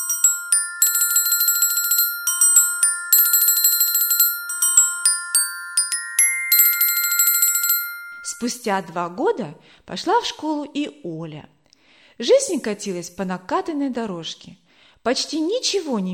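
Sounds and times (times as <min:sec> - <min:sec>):
large brass handbell rung hard as a first school bell: 0:00.0 - 0:08.5
speech: 0:08.2 - 0:11.6, 0:12.2 - 0:16.1.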